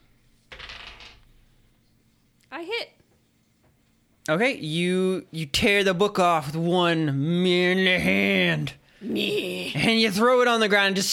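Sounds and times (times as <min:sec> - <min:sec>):
dice rolling on a table during a tabletop role-playing game: 0:00.5 - 0:01.4
speech: 0:02.6 - 0:03.0, 0:04.3 - 0:11.1.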